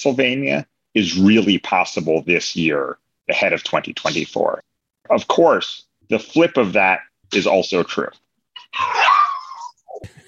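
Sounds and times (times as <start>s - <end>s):
speech: 0.0s - 9.0s
dog giving a drawn-out whining howl: 8.8s - 9.7s.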